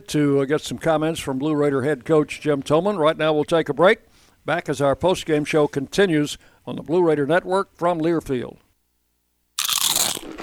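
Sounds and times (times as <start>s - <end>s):
speech: 0.0s - 8.6s
crisp crunch of a nacho chip topped with cheese and sour cream: 9.6s - 10.4s.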